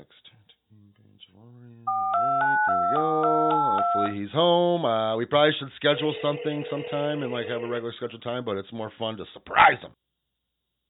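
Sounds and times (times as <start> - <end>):
drawn-out wordless voice sounds: 0.0 - 10.0
telephone touch-tone dialing beep: 1.9 - 4.1, 6.0 - 7.8
speech: 3.9 - 10.0.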